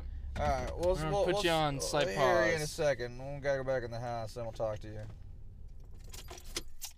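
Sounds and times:
car engine idling: 0.0 - 6.8
speech: 0.4 - 5.2
metallic keys jangling: 5.9 - 6.9.

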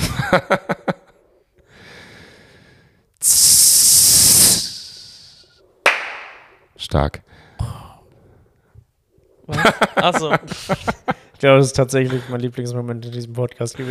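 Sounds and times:
speech: 0.3 - 0.8, 6.9 - 7.2, 10.0 - 13.8
voice imitating a rocket launch: 3.2 - 5.2
laughter: 9.5 - 11.3.

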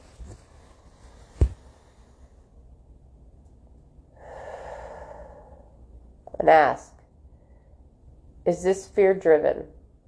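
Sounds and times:
person taking a deep breath: 4.2 - 5.9
speech: 6.4 - 6.9, 8.5 - 9.8.

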